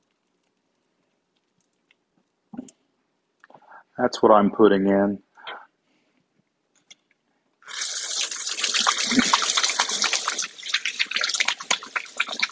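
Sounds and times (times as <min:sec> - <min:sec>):
speech: 0:04.0 - 0:05.2
water running from a tap: 0:07.6 - 0:12.5.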